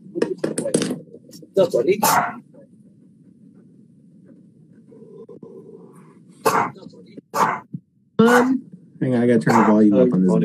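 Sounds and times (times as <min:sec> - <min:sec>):
low steady murmur: 0:00.0 - 0:10.4
speech: 0:01.6 - 0:02.4, 0:08.2 - 0:10.4
dog barking: 0:02.0 - 0:02.4, 0:06.4 - 0:08.6, 0:09.4 - 0:09.8.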